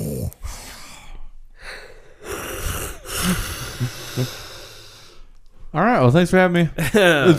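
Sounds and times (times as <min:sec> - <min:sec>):
heavy rasping wheezy breathing: 0:00.4 - 0:05.4
speech: 0:03.3 - 0:04.4, 0:05.7 - 0:07.3.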